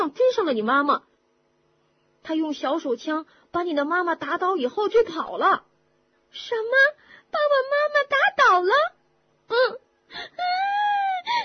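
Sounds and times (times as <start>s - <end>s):
speech: 0.0s - 1.1s, 2.2s - 5.7s, 6.3s - 11.4s
wailing cries voiced for a young cat distressed over its injured mother: 10.4s - 11.4s.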